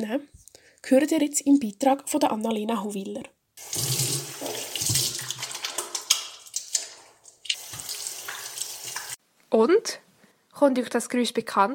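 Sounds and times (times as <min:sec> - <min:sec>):
speech: 0:00.0 - 0:04.0, 0:09.5 - 0:10.0, 0:10.6 - 0:11.7
hands being washed under a running tap: 0:03.6 - 0:09.2
water splashing into a sink: 0:03.6 - 0:09.2.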